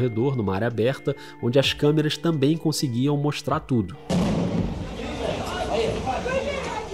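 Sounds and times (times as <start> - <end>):
speech: 0.0 - 4.8
explosive blast of an apartment door being forced open by police: 4.1 - 5.1
shouting voices: 4.9 - 6.9.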